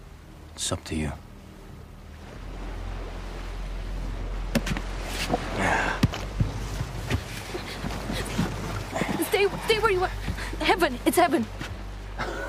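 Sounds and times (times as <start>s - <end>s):
sea water washing and lapping around a small boat: 0.0s - 12.4s
speech: 0.6s - 1.3s, 10.8s - 11.6s
low rumble: 1.2s - 12.4s
sharp slaps and knocks against the hull: 4.5s - 5.4s, 6.0s - 9.1s.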